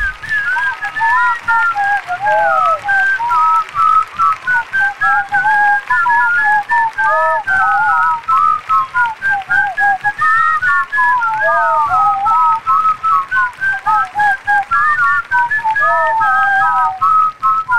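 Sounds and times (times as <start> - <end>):
person whistling a classic rock tune: 0.0 - 17.7.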